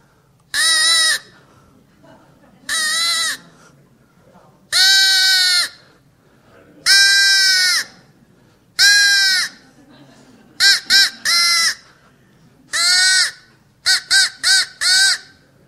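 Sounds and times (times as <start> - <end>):
duck call blown by a man: 0.5 - 1.3, 2.7 - 3.4, 4.8 - 5.8, 6.9 - 8.0, 8.8 - 9.6, 10.6 - 11.9, 12.7 - 15.4
laughter: 1.3 - 3.7, 8.9 - 13.0.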